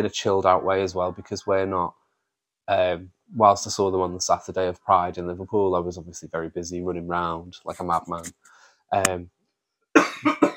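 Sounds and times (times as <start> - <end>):
speech: 0.0 - 2.0, 2.7 - 9.4
short voiced sound: 7.7 - 8.3
person coughing: 10.0 - 10.5.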